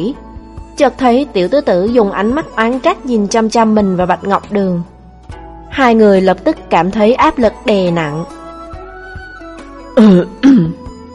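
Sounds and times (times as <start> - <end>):
speech: 0.0 - 4.9, 5.7 - 8.4, 10.0 - 10.8
person coughing: 10.0 - 10.9.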